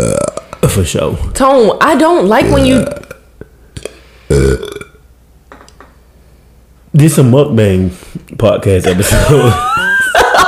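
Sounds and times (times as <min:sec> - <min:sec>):
deep rumbling burp from a person who had a bagel: 0:00.0 - 0:00.8, 0:02.3 - 0:05.0
speech: 0:00.7 - 0:03.0, 0:07.0 - 0:09.7
laughter: 0:08.8 - 0:10.4.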